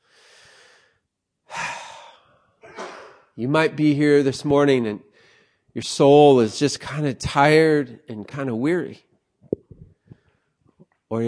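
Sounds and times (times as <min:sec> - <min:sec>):
deep breath during a guided moment of reflection: 0:00.0 - 0:02.6, 0:05.1 - 0:05.7, 0:09.9 - 0:10.6
speech: 0:03.4 - 0:05.1, 0:05.8 - 0:09.1.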